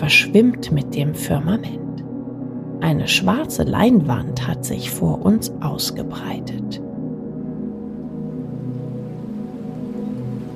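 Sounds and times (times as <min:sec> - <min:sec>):
speech: 0:00.0 - 0:01.8, 0:02.8 - 0:06.9
raindrops falling on lake water surface: 0:07.8 - 0:10.5.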